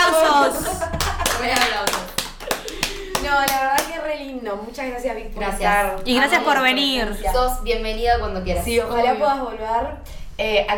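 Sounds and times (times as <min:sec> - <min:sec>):
people laughing: 0:00.0 - 0:03.4
small group clapping hands: 0:00.9 - 0:04.0
speech: 0:04.7 - 0:10.7.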